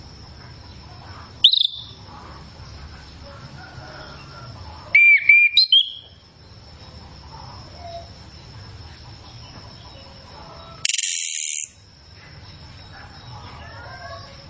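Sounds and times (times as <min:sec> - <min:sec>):
chestnut-capped thrush song of clear whistles: 0:01.4 - 0:02.0, 0:05.0 - 0:06.2, 0:10.8 - 0:11.8
chestnut-capped thrush harsh very high buzzing rattle: 0:10.8 - 0:11.9.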